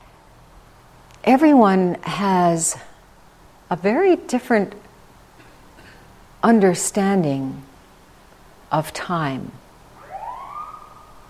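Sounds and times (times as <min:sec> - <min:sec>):
speech: 0:01.3 - 0:02.9, 0:03.7 - 0:04.9, 0:06.4 - 0:07.7, 0:08.7 - 0:09.6
emergency vehicle siren wailing: 0:10.0 - 0:11.2.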